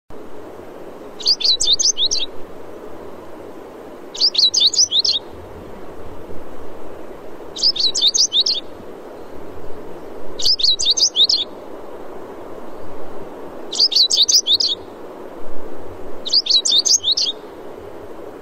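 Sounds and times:
long-tailed meadowlark singing: 1.2 - 2.3, 4.1 - 5.3, 7.6 - 9.4, 10.4 - 11.6, 13.7 - 15.0, 16.2 - 17.5.

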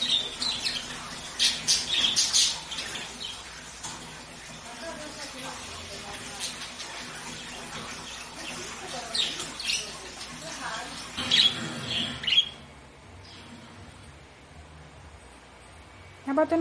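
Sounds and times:
white budgerigar warbling and squawking: 0.0 - 3.5, 6.5 - 10.2, 10.9 - 12.6.

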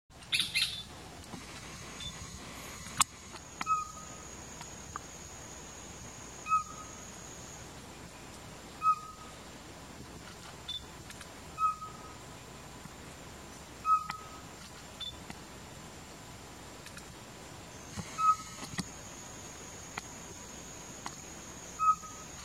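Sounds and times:
corneteiro da mata singing: 0.2 - 0.9, 2.0 - 7.6, 8.7 - 9.5, 11.6 - 12.2, 13.8 - 14.4, 17.8 - 22.4.

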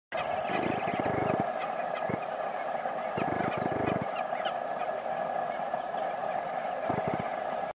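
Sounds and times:
crested lark singing: 0.1 - 7.2.

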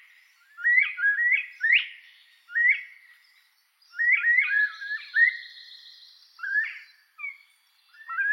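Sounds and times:
northern bobwhite whistling: 0.5 - 2.9, 3.9 - 5.6, 6.4 - 8.3.

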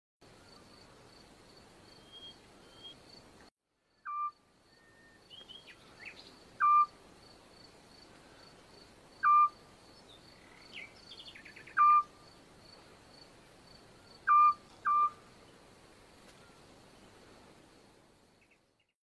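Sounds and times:
Ural owl calling: 4.0 - 7.0, 9.2 - 9.6, 10.7 - 12.2, 14.2 - 15.3.

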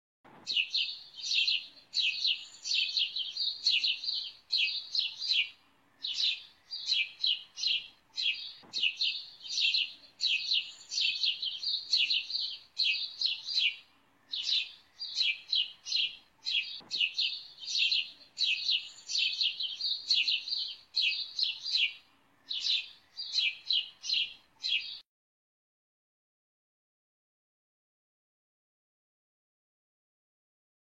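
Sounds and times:
sparrow singing: 0.3 - 25.0.

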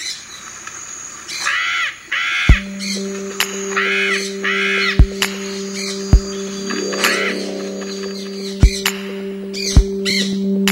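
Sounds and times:
yellow-collared macaw giving harsh arched squawks: 1.4 - 2.9
steady low hum: 2.6 - 10.6.

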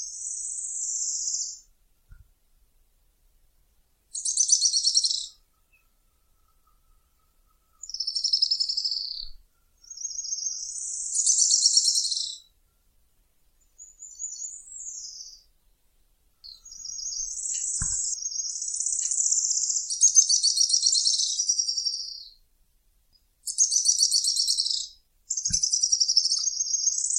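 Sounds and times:
Araucaria tit-spinetail singing high fast trills: 4.2 - 5.4, 7.8 - 12.5, 13.8 - 15.5, 16.4 - 22.4, 23.5 - 27.1.

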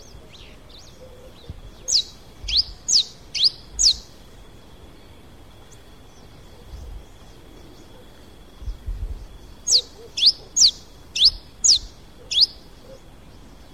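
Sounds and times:
soft chirps: 0.0 - 4.3, 4.9 - 13.7
blue-and-yellow tanager song: 1.3 - 4.1, 9.6 - 12.6.

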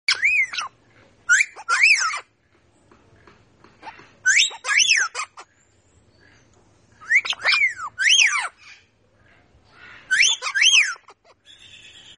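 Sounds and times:
Hispaniolan parrot calling: 0.1 - 2.3, 3.8 - 5.5, 7.0 - 12.1.

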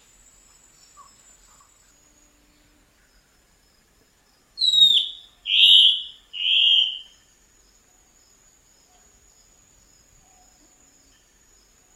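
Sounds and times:
black-spotted bare-eye singing whistled notes: 4.6 - 7.1.

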